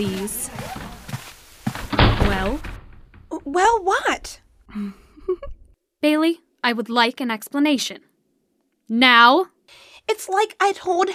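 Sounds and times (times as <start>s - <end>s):
speech: 0.0s - 0.8s, 2.3s - 2.7s, 3.4s - 5.0s, 6.0s - 8.1s, 8.9s - 11.1s
creaking: 0.0s - 4.4s
door swinging shut with a solid thunk: 1.8s - 3.3s.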